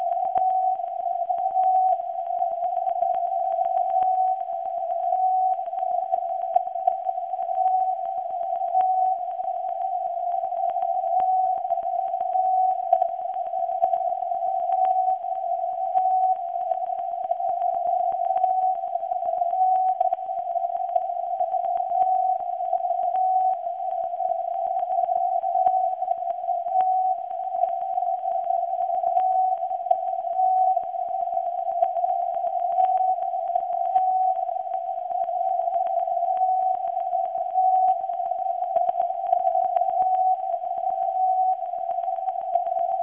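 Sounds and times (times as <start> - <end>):
11.9kHz alpha radio signal received by WebSDR: 0.0 - 43.0.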